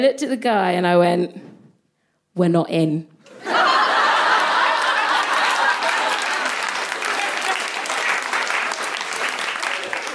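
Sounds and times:
speech: 0:00.0 - 0:01.5, 0:02.4 - 0:03.6
people chuckling: 0:03.3 - 0:08.0
loud sustained audience applause: 0:03.5 - 0:10.1.

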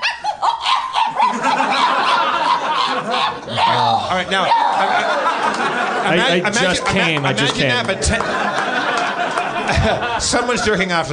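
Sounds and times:
person imitating a small dog's high-pitched terrified yelping and whimpering: 0:00.0 - 0:05.0
laughter: 0:01.1 - 0:11.1
speech: 0:04.1 - 0:08.7, 0:09.7 - 0:11.1.

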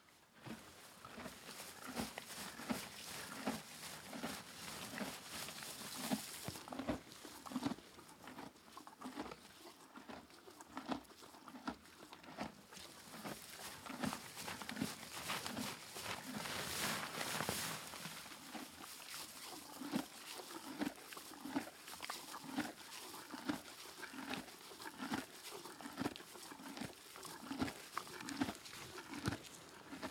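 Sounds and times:
horse chewing hay in stable: 0:00.4 - 0:30.0
faint rustling of hay: 0:01.5 - 0:06.7, 0:13.5 - 0:18.7.

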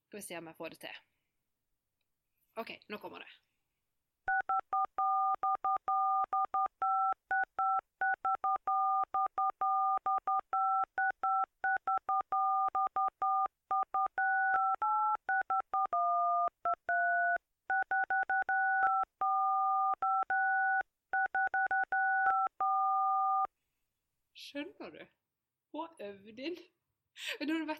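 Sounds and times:
speech: 0:00.1 - 0:01.1, 0:02.6 - 0:03.5, 0:25.8 - 0:27.7
mobile phone keypad tones played by a woman as a song melody: 0:04.3 - 0:23.5.

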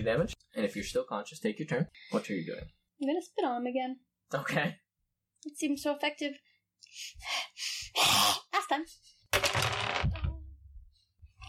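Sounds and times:
speech: 0:00.0 - 0:04.8, 0:05.4 - 0:09.6
dice rolling on a hard table: 0:09.3 - 0:10.3.

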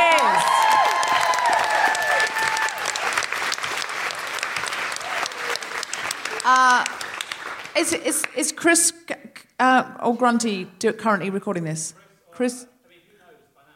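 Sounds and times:
crowd whooping and cheering: 0:00.0 - 0:06.7
large crowd applauding: 0:00.0 - 0:08.5
speech: 0:07.8 - 0:09.0, 0:09.6 - 0:12.7.

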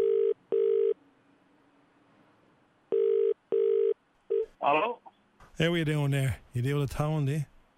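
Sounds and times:
telephone ringback tone on a call to a tow truck driver: 0:00.0 - 0:01.0, 0:02.9 - 0:04.5
speech: 0:04.6 - 0:05.0, 0:05.6 - 0:07.5
person speaking on telephone: 0:04.6 - 0:07.4.

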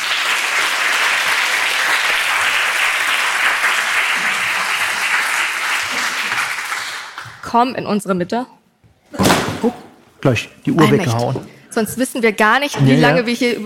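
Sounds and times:
audience applause: 0:00.0 - 0:07.4
speech: 0:07.5 - 0:08.6, 0:09.6 - 0:13.6.

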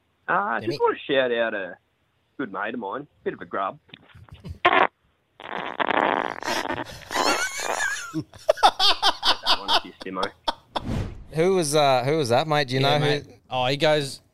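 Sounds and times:
speech: 0:00.3 - 0:01.8, 0:02.4 - 0:04.0, 0:06.8 - 0:07.4, 0:08.1 - 0:14.2
long high-pitched squeaky fart: 0:04.6 - 0:07.9
people laughing: 0:06.4 - 0:10.8.

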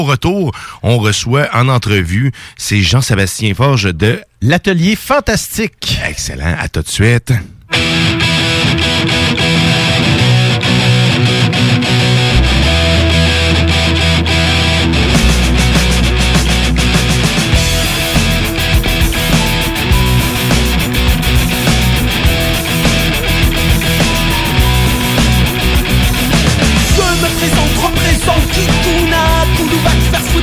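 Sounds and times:
speech: 0:00.0 - 0:08.2
distorted rock song played on air: 0:07.7 - 0:30.4.

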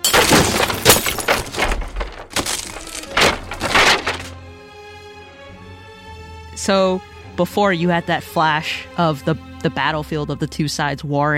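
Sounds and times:
glass debris tinkling: 0:00.0 - 0:04.4
glass display case shattering under a sword: 0:00.0 - 0:04.4
sword crashing into a glass display case: 0:00.0 - 0:04.4
wood of a display case splintering: 0:00.0 - 0:04.4
speech: 0:06.6 - 0:11.3.

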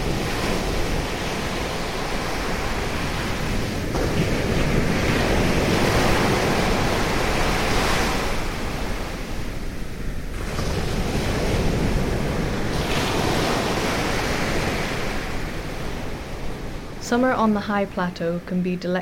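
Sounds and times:
wind buffeting the microphone: 0:00.0 - 0:18.0
surf washing in: 0:00.0 - 0:18.6
speech: 0:17.1 - 0:19.0.

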